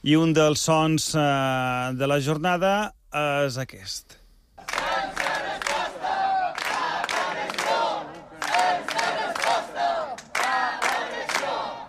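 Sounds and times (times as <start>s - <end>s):
speech: 0.0s - 4.8s
crowd of protesters chanting in unison at a rally: 4.6s - 11.8s.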